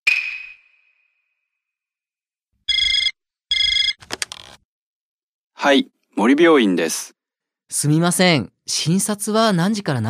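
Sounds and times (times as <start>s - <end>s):
telephone ringing in electronic bursts: 2.7s - 4.1s
speech: 5.6s - 10.0s.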